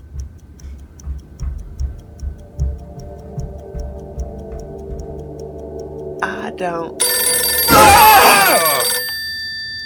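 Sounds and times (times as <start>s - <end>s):
telephone bell ringing: 7.0s - 9.8s.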